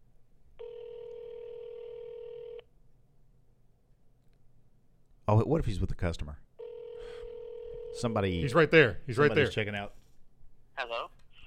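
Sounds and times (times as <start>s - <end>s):
telephone ringback tone on an outgoing call to a studio front desk: 0.6s - 2.6s, 6.6s - 8.1s
speech: 5.3s - 6.5s, 8.0s - 10.0s.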